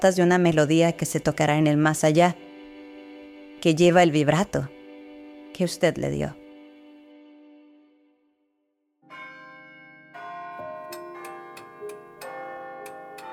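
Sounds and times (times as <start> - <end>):
speech: 0.0 - 2.5, 3.6 - 4.8, 5.6 - 6.4
church bells tolling in a bell tower: 9.1 - 13.3.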